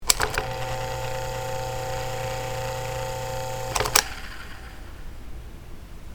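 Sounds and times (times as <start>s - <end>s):
electric fan motor running with blades removed: 0.0s - 5.7s.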